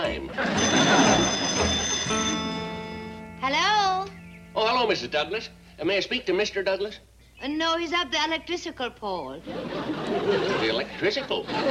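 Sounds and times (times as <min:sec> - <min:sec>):
laughter: 0:00.0 - 0:01.8, 0:09.4 - 0:11.6
speech: 0:00.1 - 0:00.6, 0:04.8 - 0:11.6
telephone ringing with a metallic bell tone: 0:00.3 - 0:03.4
hissy noisy background: 0:01.5 - 0:11.6.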